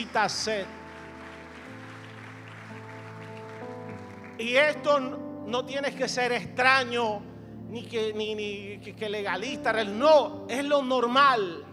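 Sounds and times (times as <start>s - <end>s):
speech: 0.0s - 0.8s, 4.4s - 11.7s
church audience applause during a sermon: 0.0s - 4.5s
sustained keyboard chords: 0.0s - 11.7s.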